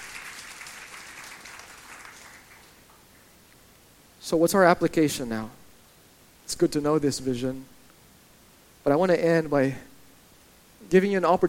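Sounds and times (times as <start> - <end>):
audience clapping in sustained applause: 0.0 - 3.3
speech: 4.3 - 5.6, 6.5 - 7.7, 8.8 - 9.9, 10.9 - 11.4.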